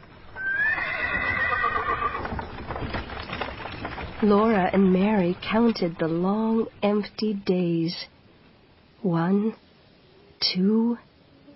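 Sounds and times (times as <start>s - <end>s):
horse hooves clip-clopping and shuffling: 0.0s - 7.2s
horse whinnying shrilly: 0.4s - 2.4s
speech: 4.2s - 8.1s, 9.0s - 9.6s, 10.4s - 11.1s.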